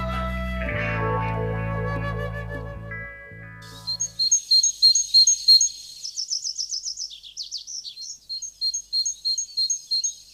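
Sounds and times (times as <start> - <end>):
tonal music: 0.0 - 4.3
great tit singing a two-note phrase: 3.6 - 10.3.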